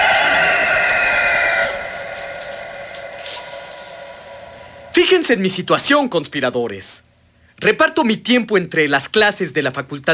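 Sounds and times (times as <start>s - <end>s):
rooster crowing with a bright strained tone: 0.0s - 5.0s
speech: 5.1s - 10.1s.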